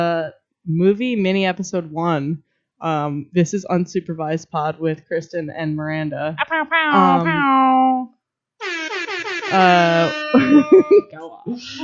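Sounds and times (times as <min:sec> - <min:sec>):
speech: 0:00.0 - 0:08.8, 0:09.5 - 0:11.8
air horn blasts: 0:08.6 - 0:10.6
laughter: 0:09.5 - 0:11.8.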